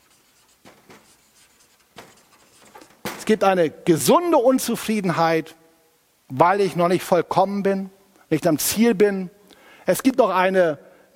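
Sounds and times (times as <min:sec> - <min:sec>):
word being written by hand: 0:00.0 - 0:03.3
speech: 0:03.3 - 0:05.6, 0:06.3 - 0:11.1.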